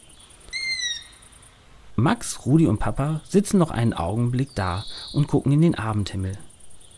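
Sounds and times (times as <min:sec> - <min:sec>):
owl call: 0:00.0 - 0:01.3
faint hiss: 0:00.0 - 0:06.9
speech: 0:02.0 - 0:06.5.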